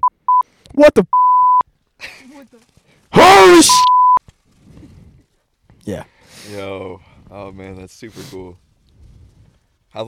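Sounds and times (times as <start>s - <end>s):
short clear electronic sensor beeps: 0.0s - 0.4s, 1.1s - 1.6s, 3.6s - 4.2s
speech: 0.8s - 1.2s, 2.0s - 4.0s, 5.9s - 8.6s.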